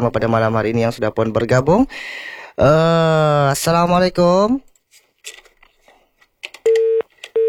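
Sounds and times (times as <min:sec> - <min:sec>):
speech: 0:00.0 - 0:05.4
telephone busy tone after a call is cut off: 0:06.7 - 0:07.4.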